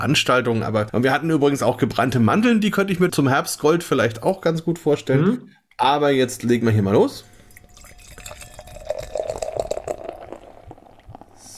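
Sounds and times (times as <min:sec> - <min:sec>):
speech: 0:00.0 - 0:07.3
beer pouring and gurgling into a glass: 0:07.2 - 0:11.5.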